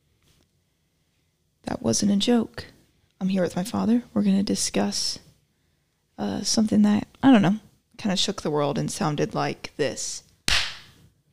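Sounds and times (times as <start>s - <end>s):
speech: 1.9s - 5.2s, 6.2s - 10.3s
single sharp loud slap sound effect: 10.5s - 11.0s.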